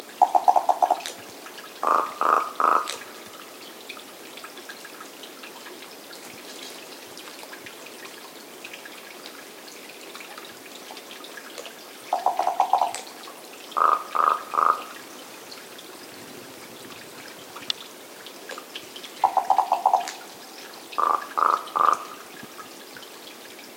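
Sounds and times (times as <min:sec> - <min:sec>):
Common Raven Corvus corax calling: 0:00.2 - 0:01.2, 0:01.8 - 0:03.4, 0:12.1 - 0:13.1, 0:13.8 - 0:15.0, 0:19.2 - 0:20.3, 0:21.0 - 0:22.3.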